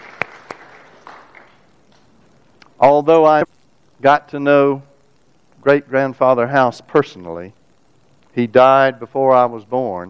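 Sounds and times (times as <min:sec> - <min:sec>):
one person clapping their hands: 0:00.0 - 0:02.1
speech: 0:02.8 - 0:04.9, 0:05.6 - 0:07.6, 0:08.4 - 0:10.0.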